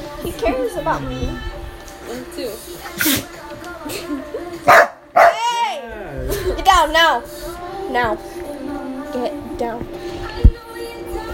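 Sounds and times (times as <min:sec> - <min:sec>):
speech: 0:00.2 - 0:04.9, 0:06.7 - 0:08.3, 0:09.1 - 0:10.1
pet dog barking: 0:04.7 - 0:05.5.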